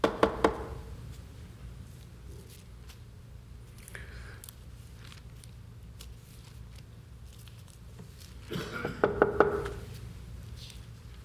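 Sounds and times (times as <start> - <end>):
knocking on a door: 0.0 - 0.7, 9.0 - 9.7.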